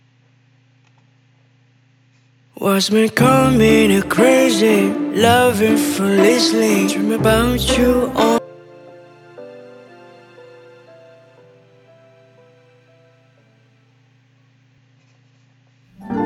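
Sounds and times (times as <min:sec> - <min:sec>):
romantic pop song with sung vocal over warm accompaniment: 0:02.6 - 0:08.4
speech: 0:02.6 - 0:08.4
soft sustained instrumental tones: 0:03.2 - 0:13.8, 0:16.0 - 0:16.2.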